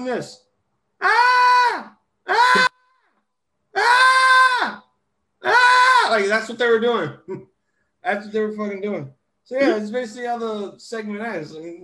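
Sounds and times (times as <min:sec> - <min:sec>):
speech: 0:00.0 - 0:00.4, 0:01.0 - 0:01.2, 0:06.1 - 0:11.8
voice imitating girls yelling with high-pitched shrieks: 0:01.0 - 0:03.1, 0:03.8 - 0:06.3.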